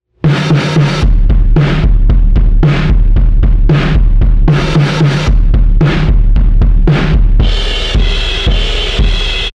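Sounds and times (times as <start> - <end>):
drums: 0.1 - 9.5.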